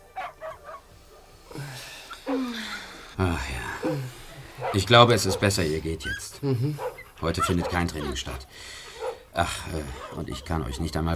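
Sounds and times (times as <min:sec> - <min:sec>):
sick sled dogs in a box whimpering and whining: 0:00.0 - 0:01.4, 0:03.6 - 0:11.1
speech: 0:04.7 - 0:08.8, 0:09.4 - 0:11.1.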